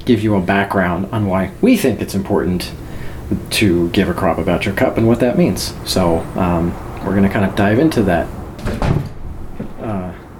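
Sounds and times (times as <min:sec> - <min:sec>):
speech: 0:00.1 - 0:09.1
door opening or shutting with a solid thump: 0:08.6 - 0:09.9.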